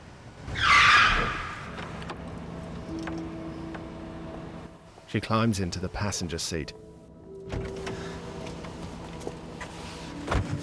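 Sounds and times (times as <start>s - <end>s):
4x4 tires screeching as it brakes hard in an underground car park: 0.3s - 2.1s
faint tonal hum: 2.2s - 10.6s
speech: 5.1s - 6.9s.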